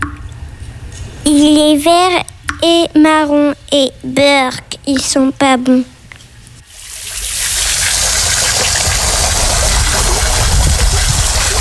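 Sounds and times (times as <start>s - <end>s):
speech: 1.3s - 5.9s
water gushing from a toy water dragon: 6.6s - 11.5s.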